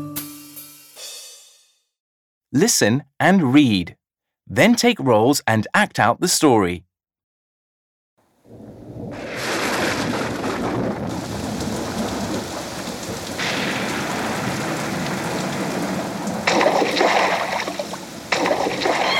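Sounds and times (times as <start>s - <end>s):
speech: 2.5s - 6.9s
heavy rain: 8.5s - 19.1s.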